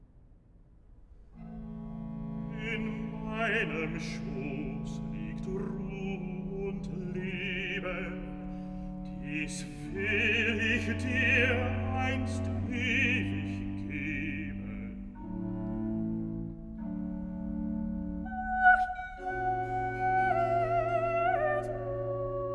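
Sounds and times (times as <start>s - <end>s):
bass and soprano recitative from a cantata: 1.6s - 22.5s.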